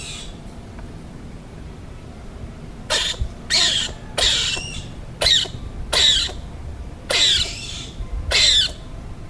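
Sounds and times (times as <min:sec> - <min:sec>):
edible dormouse at night in nature in Abaliget: 0:02.9 - 0:06.5, 0:07.0 - 0:08.8.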